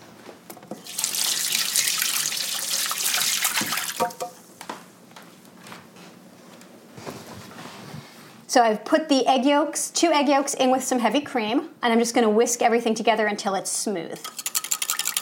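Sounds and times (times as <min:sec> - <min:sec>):
tap running at full flow: 0:02.9 - 0:04.8
speech: 0:08.5 - 0:14.4.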